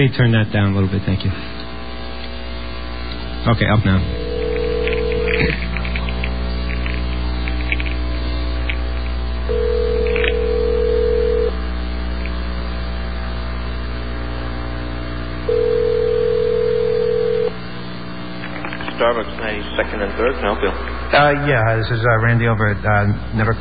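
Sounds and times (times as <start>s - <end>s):
speech: 0.0s - 1.7s, 3.4s - 4.2s, 5.3s - 5.7s, 19.0s - 23.5s
constant low electrical hum: 0.0s - 23.5s
telephone line tone: 4.1s - 5.6s, 9.5s - 11.6s, 15.5s - 17.6s.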